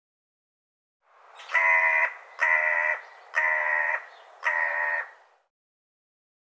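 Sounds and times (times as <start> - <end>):
bird giving harsh nasal cawing calls: 1.3 - 5.3.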